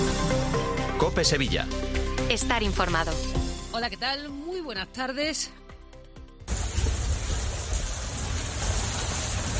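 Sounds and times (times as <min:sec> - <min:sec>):
speech: 0:00.1 - 0:05.6
heavy rain pouring: 0:06.5 - 0:09.5.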